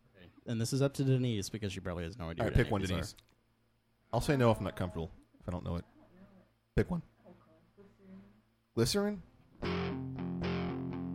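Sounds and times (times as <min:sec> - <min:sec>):
speech: 0:00.5 - 0:03.3, 0:04.1 - 0:05.9, 0:06.8 - 0:07.1, 0:08.8 - 0:09.8
heavily distorted electric guitar chords: 0:09.6 - 0:11.1.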